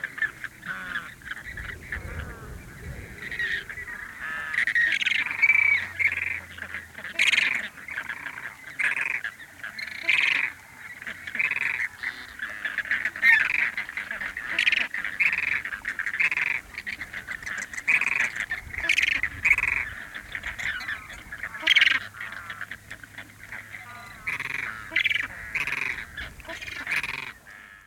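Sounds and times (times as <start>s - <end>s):
Chilean flamingo flock honking and squawking: 0.0s - 27.8s
light wind gust: 0.3s - 6.0s.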